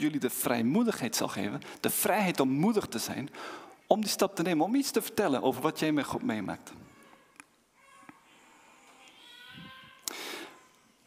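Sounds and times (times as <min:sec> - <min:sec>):
speech: 0:00.0 - 0:06.8
baby crying faintly: 0:06.8 - 0:11.0.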